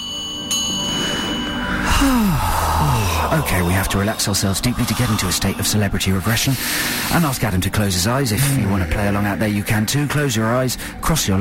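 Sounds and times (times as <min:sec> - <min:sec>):
bell struck as a sound effect: 0:00.0 - 0:01.8
descending gliding tone: 0:01.6 - 0:06.6
speech: 0:03.3 - 0:11.3.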